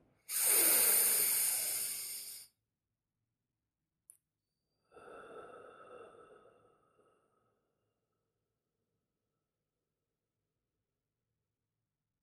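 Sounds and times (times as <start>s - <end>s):
slow deep breathing in a guided breathing exercise: 0.3s - 2.5s, 4.8s - 7.9s.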